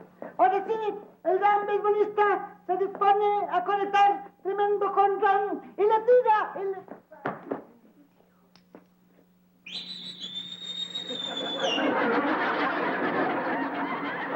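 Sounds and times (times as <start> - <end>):
speech: 0.6 - 7.0
person whistling a loud sustained whistle: 9.6 - 12.0
laughter: 11.0 - 14.3.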